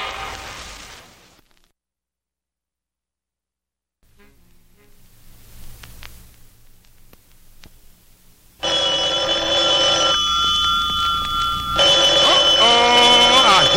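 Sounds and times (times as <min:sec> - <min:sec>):
low hum: 0:04.1 - 0:13.7
loud bright telephone bell ringing: 0:08.6 - 0:13.7.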